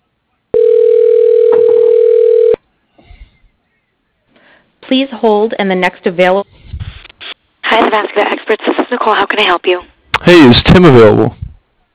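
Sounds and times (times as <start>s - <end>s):
loud steady telephone dialing tone: 0.6s - 2.6s
speech: 5.1s - 6.5s, 8.0s - 11.4s.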